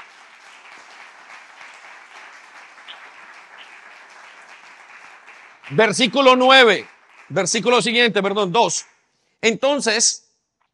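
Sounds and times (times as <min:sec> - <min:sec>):
audience applauding in a large room: 0:00.0 - 0:08.4
speech: 0:05.7 - 0:10.2.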